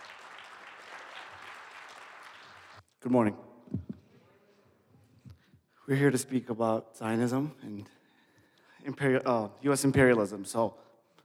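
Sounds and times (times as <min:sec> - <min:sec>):
audience applause for the panelists at a panel event: 0:00.0 - 0:02.8
speech: 0:03.0 - 0:04.0, 0:05.9 - 0:08.0, 0:08.9 - 0:10.9.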